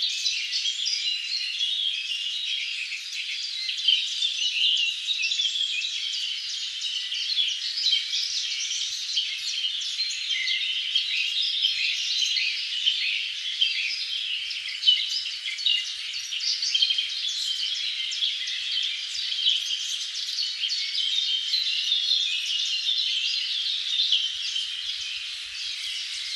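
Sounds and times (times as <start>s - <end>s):
many birds singing in a dense chorus in a forest: 0.0s - 26.3s.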